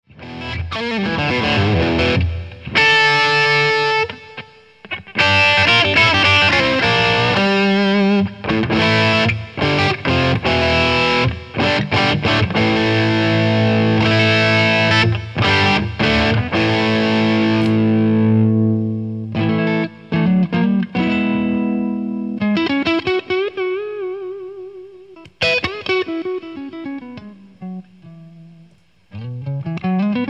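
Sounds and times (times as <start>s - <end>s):
overdriven guitar: 0.1s - 30.2s.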